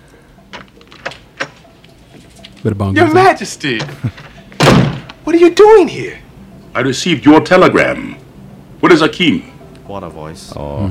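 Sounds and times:
door opening with latch or handle clacks in a film scene: 0.5 - 1.6
speech: 2.6 - 4.3, 5.3 - 6.2, 6.8 - 8.2, 8.8 - 10.8.

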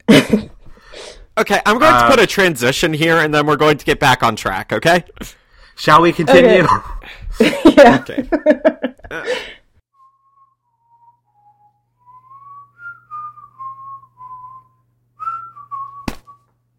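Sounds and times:
speech: 1.4 - 9.6
laughter: 6.4 - 9.5
person whistling a tune off key: 10.0 - 16.5.

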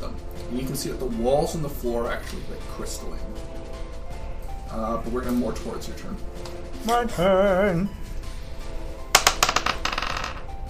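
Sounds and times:
speech: 0.5 - 3.6, 4.7 - 8.0
dice tumbling and bouncing across a hard tabletop: 9.1 - 10.5.

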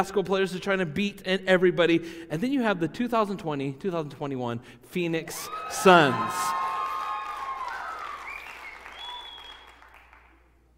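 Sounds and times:
speech: 0.0 - 6.6
large audience cheering: 5.4 - 10.2
whistles: 7.6 - 10.4.

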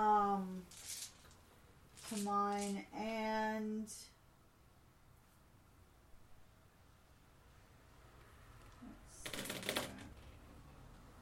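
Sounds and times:
quiet hiss: 0.0 - 9.2
handful of dice rolled onto a surface: 0.7 - 1.4, 2.0 - 2.8, 9.2 - 10.3
speech: 2.1 - 4.2.

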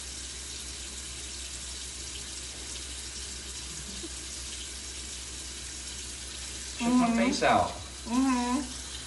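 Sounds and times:
hot water running from a tap: 0.0 - 9.0
person vocalizing: 8.0 - 8.7.

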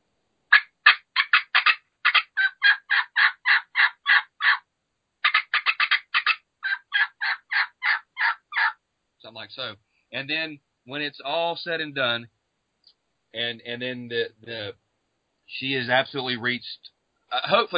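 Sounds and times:
turkey call imitating hen yelps and cuts: 0.5 - 4.6, 5.2 - 8.8
speech: 9.4 - 12.4, 13.3 - 14.8, 15.5 - 17.7.

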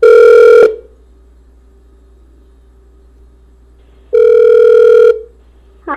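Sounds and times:
electronic ringback tones of an outgoing phone call: 0.0 - 0.8, 4.1 - 5.3.

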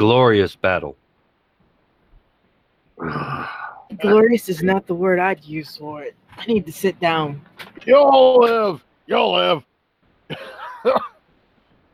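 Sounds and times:
speech: 0.0 - 1.0, 3.0 - 9.7, 10.3 - 11.1
person coughing from dust in the lungs: 10.3 - 11.2.

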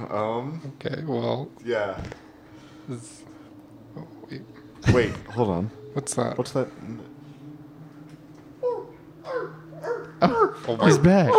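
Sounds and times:
speech: 0.0 - 2.2, 2.9 - 3.3, 3.9 - 7.1, 10.2 - 11.3
steady low hum: 0.0 - 11.3
dog whimpering and giving short whiny barks: 8.6 - 11.3.

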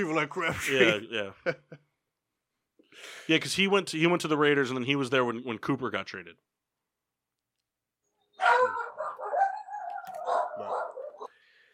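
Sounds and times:
speech: 0.0 - 1.8, 3.0 - 6.6
two small dogs yapping and whining: 8.4 - 11.3.

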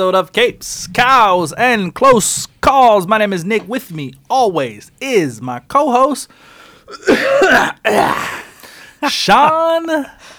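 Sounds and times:
speech: 0.0 - 8.4, 9.0 - 10.3
throat clearing from a tickle in the throat: 6.9 - 8.6.

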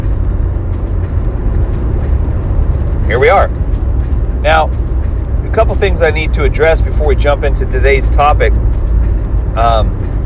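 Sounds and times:
car engine and road noise inside a car cabin: 0.0 - 10.2
speech: 3.1 - 3.6, 4.4 - 4.8, 5.5 - 8.7, 9.6 - 10.1.

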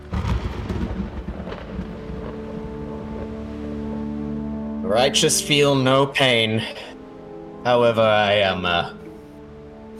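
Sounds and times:
storm wind roaring: 0.0 - 4.7
speech: 4.9 - 6.9, 7.6 - 9.0.

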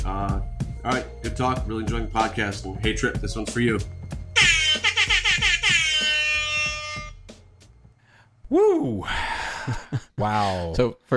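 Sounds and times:
speech: 0.1 - 4.0, 8.5 - 11.1
air horn sound effect: 4.4 - 7.2.

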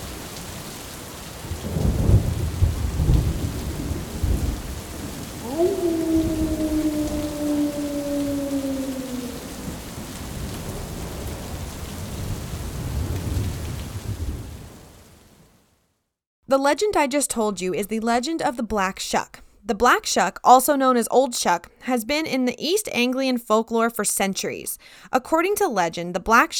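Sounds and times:
low rolling thunder: 0.0 - 14.9
heavy steady rain: 0.0 - 15.6
long steady howling tone: 5.4 - 10.1
speech: 16.5 - 26.5.

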